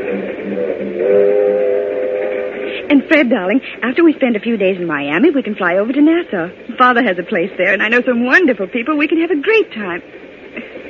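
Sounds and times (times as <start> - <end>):
train travelling to Miami rumbling: 0.0 - 10.8
speech: 3.1 - 10.2.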